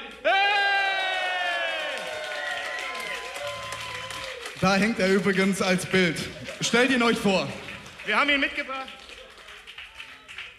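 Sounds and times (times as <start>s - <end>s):
crowd cheering and hollering: 0.0s - 10.5s
excited shouts: 0.2s - 4.4s
audience applause: 0.8s - 10.5s
speech: 4.6s - 9.0s.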